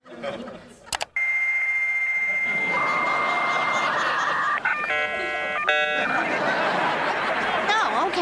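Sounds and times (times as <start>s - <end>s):
laughter: 0.0s - 0.9s, 2.4s - 8.2s
click: 0.9s - 1.2s
dial-up modem handshaking as a new computer signs on to the internet: 0.9s - 1.3s.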